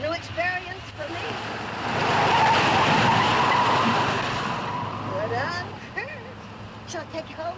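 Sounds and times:
hearse tires skidding across pavement as the car swerves: 1.4 - 5.8.

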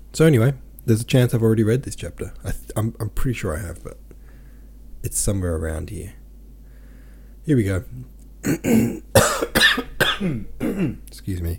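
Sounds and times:
speech: 0.2 - 4.0, 5.0 - 6.2, 7.4 - 9.4, 10.2 - 11.5
harsh raspy coughs: 8.4 - 11.0.

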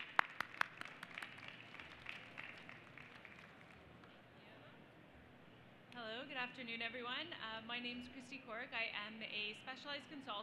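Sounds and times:
small audience applauding: 0.0 - 3.9
speech: 6.3 - 10.4.

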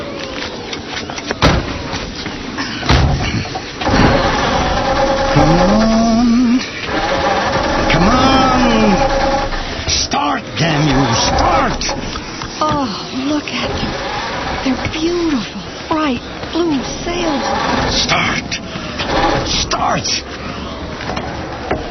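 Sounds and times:
flooded truck engine cranking and failing to start: 0.3 - 12.5, 13.5 - 21.8
truck door slamming shut: 1.4 - 2.1, 2.9 - 4.5.

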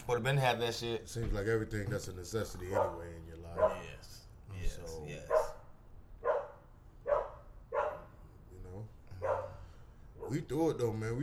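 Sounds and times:
speech: 0.1 - 5.5, 10.3 - 11.2
dogs barking: 2.6 - 4.1, 5.2 - 8.2, 9.1 - 10.5.

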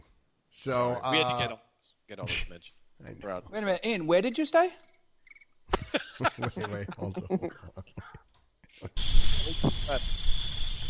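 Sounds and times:
speech: 0.6 - 5.0, 5.9 - 8.2, 8.8 - 10.3
laughter: 1.1 - 1.5, 5.7 - 8.2
dense chorus of crickets chirping: 4.3 - 5.6, 9.0 - 10.8.

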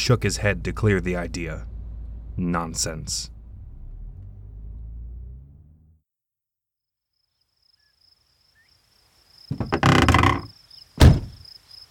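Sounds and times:
speech: 0.0 - 1.7, 2.4 - 3.3, 9.5 - 10.1
car engine rumbling while pulling up at a home: 0.0 - 6.0
faint cricket chirring at night: 7.1 - 11.8
sharp thunk: 11.0 - 11.4.

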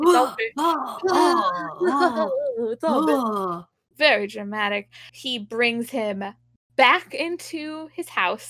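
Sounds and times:
voice imitating someone gasping for air: 0.0 - 3.6
speech: 0.1 - 8.4.

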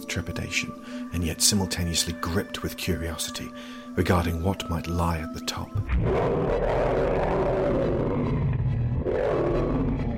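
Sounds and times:
speech: 0.1 - 8.0
deep creature roar from overhead: 5.9 - 10.1.

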